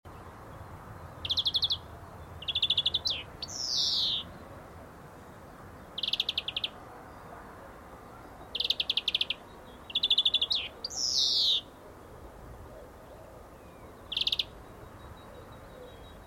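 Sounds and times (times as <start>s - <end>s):
European greenfinch Chloris chloris song: 0.1s - 16.2s.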